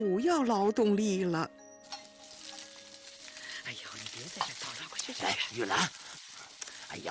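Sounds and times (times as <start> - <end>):
speech: 0.0 - 2.0, 3.7 - 6.0
food stir-frying in a wok: 1.8 - 7.0.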